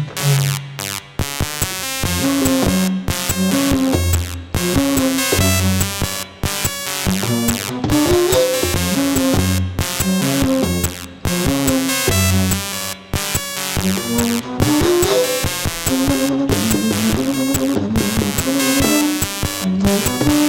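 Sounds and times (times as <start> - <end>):
TI 83 Plus calculator sounds: 0.2 - 20.4
contrabass flute etude: 14.0 - 19.8.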